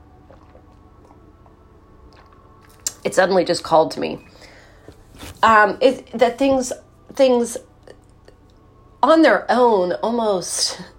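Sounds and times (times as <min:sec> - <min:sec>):
low steady hum: 0:00.0 - 0:10.9
slurping sips of coffee: 0:00.2 - 0:01.2, 0:02.1 - 0:03.0
swallowing and lip sounds: 0:00.2 - 0:03.0
speech: 0:03.0 - 0:04.3, 0:05.4 - 0:07.7, 0:09.0 - 0:10.9.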